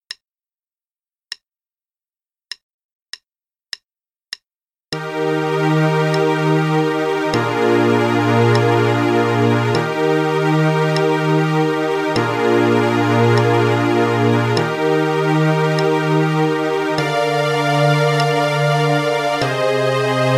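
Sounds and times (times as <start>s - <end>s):
strings playing: 5.0s - 20.3s.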